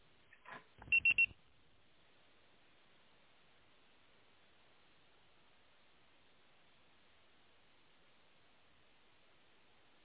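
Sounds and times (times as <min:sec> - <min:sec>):
voicemail beep tone: 0:00.8 - 0:01.3.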